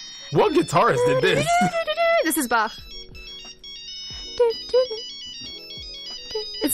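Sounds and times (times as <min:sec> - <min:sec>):
ringtone melody on a gray Nokia phone: 0:00.0 - 0:06.7
speech: 0:00.3 - 0:02.9, 0:04.4 - 0:05.1.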